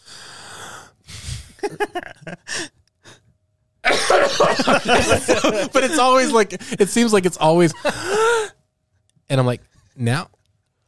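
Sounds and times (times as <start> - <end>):
sharp breathy inhale: 0.0 - 1.6
speech: 1.6 - 2.4, 4.6 - 8.5, 9.3 - 10.4
laughter: 1.6 - 2.6, 3.9 - 8.5
voice imitating a cough: 3.9 - 5.6.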